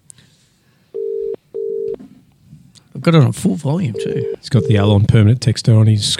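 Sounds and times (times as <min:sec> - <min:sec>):
phone call ringing tone: 0:01.0 - 0:02.0, 0:03.9 - 0:04.8
speech: 0:03.0 - 0:06.1.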